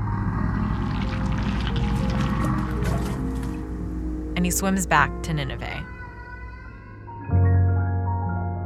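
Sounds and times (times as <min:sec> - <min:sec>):
loud steady gush of water pouring and sloshing: 0:00.0 - 0:04.0
low rumbling undertone: 0:00.0 - 0:08.5
speech: 0:04.4 - 0:05.9.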